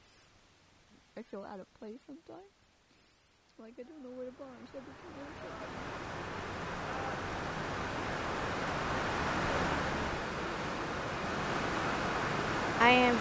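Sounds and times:
steady rain falling: 0.0 - 13.1
speech: 1.2 - 2.6, 3.6 - 7.8, 12.8 - 13.1.

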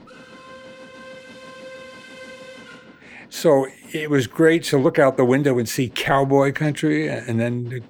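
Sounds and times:
train whistle: 0.0 - 4.2
passenger train rumbling on rails: 0.0 - 7.8
speech: 3.3 - 7.8.

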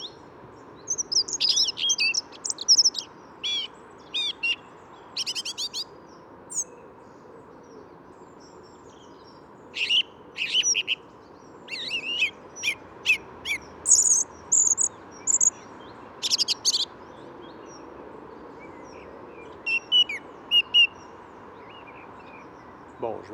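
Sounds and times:
low rumble of traffic noise near a red light: 0.0 - 23.3
two songbirds singing together in chirping phrases: 0.0 - 23.3.

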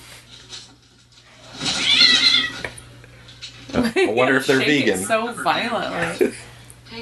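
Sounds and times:
cat meowing inside a box: 1.7 - 2.6
speech: 3.8 - 6.4.

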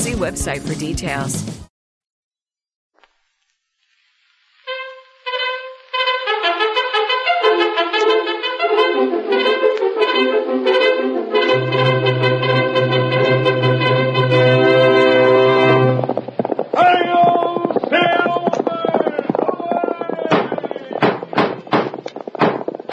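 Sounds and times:
speech: 0.0 - 1.6
brass-heavy music: 4.7 - 16.4
horse hooves galloping: 4.7 - 22.9.

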